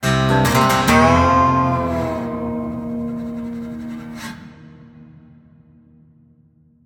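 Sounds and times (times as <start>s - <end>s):
large guitar riff: 0.0s - 5.0s.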